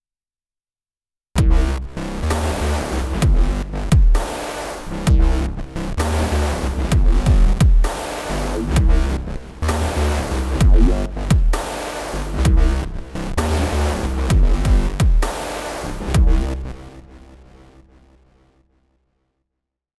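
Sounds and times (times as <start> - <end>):
Yamaha Montage 8 synthesizer performance: 1.4 - 17.3.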